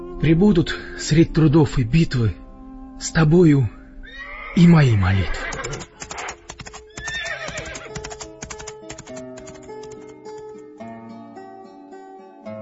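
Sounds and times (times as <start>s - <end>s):
speech: 0.2s - 2.4s, 3.0s - 3.8s, 4.5s - 6.0s
horse neighing with a sharp whinny: 4.0s - 8.1s
horse hooves clip-clopping: 5.2s - 10.6s.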